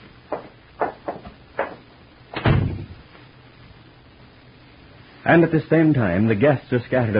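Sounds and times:
wooden door thud with a low rumble: 0:00.3 - 0:02.9
speech: 0:05.3 - 0:07.1.

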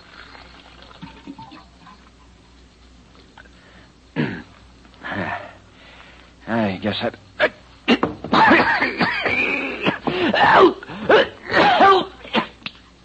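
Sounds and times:
short gurgling bursts: 0:00.0 - 0:02.0
office water cooler glugging as a cup fills: 0:00.0 - 0:02.2
steady hiss: 0:00.0 - 0:13.0
speech: 0:06.5 - 0:07.5.

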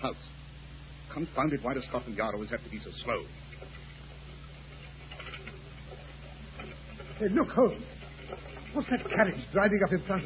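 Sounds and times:
speech: 0:00.0 - 0:00.4, 0:01.2 - 0:03.5, 0:07.2 - 0:10.2
faint low hum: 0:00.0 - 0:10.2
steady rain pattering: 0:03.1 - 0:10.2.

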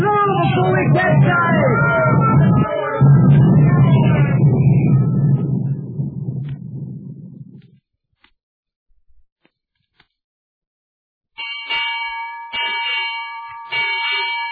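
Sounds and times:
heavy rumbling noise: 0:00.0 - 0:07.8
ship's bell striking six bells: 0:11.4 - 0:14.4.

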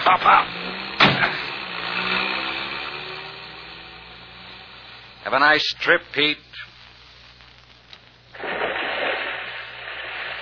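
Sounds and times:
car engine started and put in gear: 0:00.0 - 0:05.3
speech: 0:00.1 - 0:00.5, 0:05.2 - 0:06.7.

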